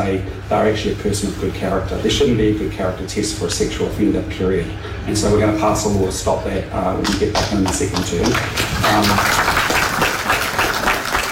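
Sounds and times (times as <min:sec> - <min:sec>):
speech: 0:00.0 - 0:09.6
audience applause: 0:07.1 - 0:11.2.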